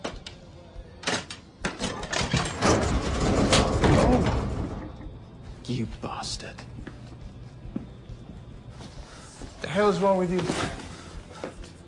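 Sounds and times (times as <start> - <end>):
heavy rumbling slide of a door opening: 2.2 - 5.1
speech: 5.7 - 6.9, 9.8 - 10.8.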